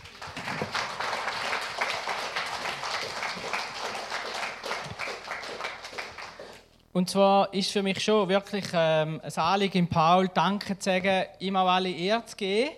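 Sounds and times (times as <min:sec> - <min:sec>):
crowd applauding: 0:00.0 - 0:06.7
speech: 0:07.0 - 0:12.7.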